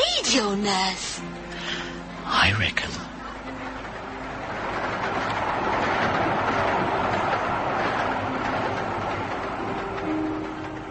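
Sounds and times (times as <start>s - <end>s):
train rolling along the rails: 0.0s - 10.8s
speech: 0.3s - 1.4s, 2.3s - 3.6s.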